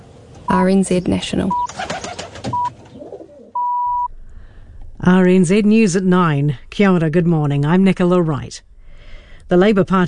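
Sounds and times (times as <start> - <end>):
low hum: 0.0 - 10.0
rustling outdoor noise: 0.0 - 10.0
speech: 0.5 - 1.9, 5.0 - 8.7, 9.5 - 10.0
electronic beeps: 1.5 - 1.8, 2.5 - 2.7, 3.6 - 4.1
rock pigeon cooing: 1.6 - 3.6.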